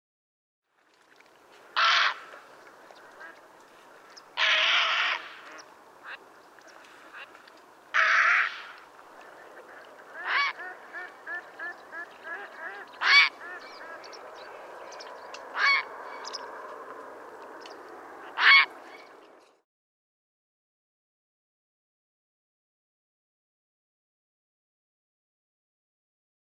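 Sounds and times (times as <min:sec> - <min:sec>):
grey heron calling: 0:01.8 - 0:16.6, 0:17.6 - 0:19.2.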